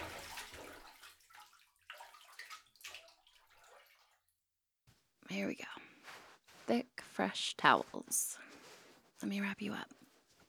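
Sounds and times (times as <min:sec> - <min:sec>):
bath water splashing and sloshing: 0:00.0 - 0:04.3
speech: 0:06.7 - 0:08.4, 0:09.2 - 0:10.0.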